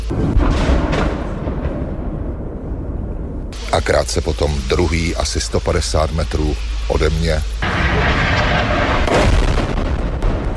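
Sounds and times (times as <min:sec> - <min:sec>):
heavy missile explosion rumbling: 0:00.0 - 0:04.5, 0:07.4 - 0:10.5
speech: 0:03.7 - 0:07.7.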